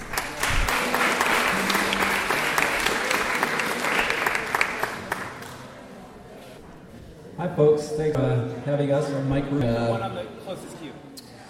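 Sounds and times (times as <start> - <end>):
audience applause: 0.0 - 5.8
speech: 7.5 - 11.2.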